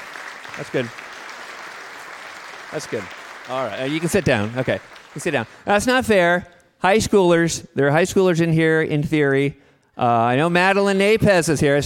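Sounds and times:
crowd applause: 0.0s - 5.9s
speech: 0.6s - 1.1s, 2.7s - 11.8s.

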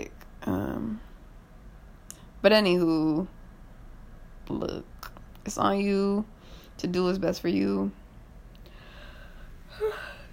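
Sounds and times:
speech: 2.4s - 3.4s, 4.5s - 4.9s, 5.5s - 8.0s
person yawning: 9.7s - 10.3s.

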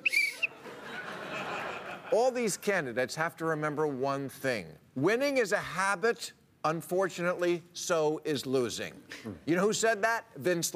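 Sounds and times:
coach's whistle blast: 0.0s - 0.6s
faint noise: 0.0s - 10.7s
laughter: 0.5s - 2.2s
speech: 2.1s - 10.7s.

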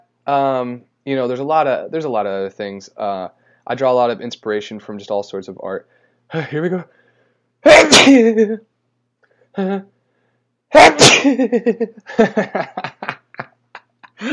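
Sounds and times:
speech: 0.3s - 7.0s, 7.6s - 8.7s, 9.6s - 9.9s, 10.7s - 12.9s
loud exaggerated theatrical sneezes: 7.6s - 8.4s, 10.7s - 11.6s
laughter: 11.5s - 13.4s.

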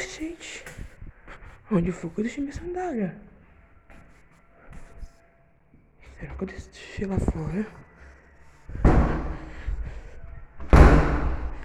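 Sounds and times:
speech: 1.7s - 3.3s, 6.2s - 7.8s
door slamming shut: 8.8s - 9.7s, 10.6s - 11.6s.

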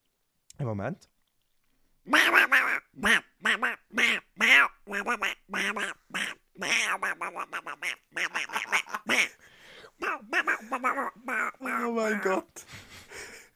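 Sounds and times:
speech: 0.6s - 1.2s, 3.0s - 4.2s, 4.9s - 13.3s
person imitating duck quacks: 2.1s - 9.4s, 10.0s - 12.4s.

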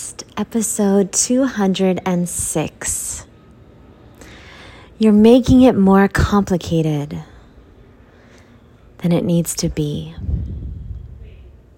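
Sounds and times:
faint hum: 0.0s - 11.7s
speech: 0.4s - 3.3s, 5.0s - 7.3s, 9.0s - 10.5s
muffled voice talking through a wall from another room: 10.0s - 11.7s.

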